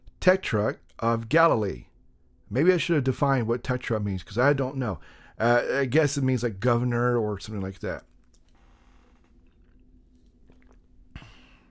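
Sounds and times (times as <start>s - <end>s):
speech: 0.2s - 1.9s, 2.5s - 8.1s
person drinking water: 9.4s - 11.6s.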